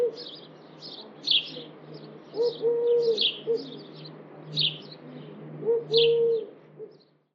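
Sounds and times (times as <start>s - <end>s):
bird chirps: 0.0s - 5.3s.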